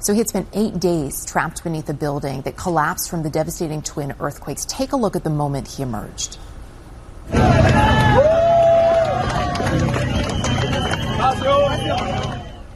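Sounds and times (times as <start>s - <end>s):
speech: 0.0s - 6.5s, 7.3s - 8.3s
rescue crews cheering and shouting: 7.3s - 12.7s
rescue crews clapping: 7.4s - 12.7s.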